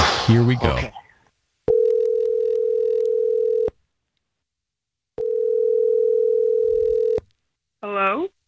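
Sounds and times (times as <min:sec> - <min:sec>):
speech: 0:00.3 - 0:01.0
phone ringback tone on an outgoing call: 0:01.7 - 0:03.7, 0:05.2 - 0:07.2.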